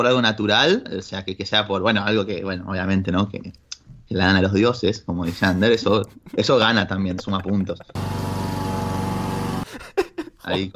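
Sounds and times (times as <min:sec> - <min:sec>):
speech: 0:00.0 - 0:08.4, 0:10.4 - 0:10.7
laughter: 0:05.3 - 0:08.3, 0:09.6 - 0:10.7
lawn mower engine running outside: 0:07.9 - 0:09.7.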